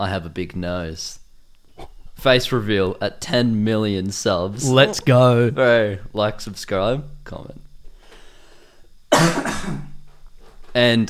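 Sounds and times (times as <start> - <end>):
speech: 0.0 - 1.2, 2.2 - 7.6, 9.1 - 9.9, 10.8 - 11.0
person coughing harshly: 4.6 - 5.2, 9.1 - 9.9.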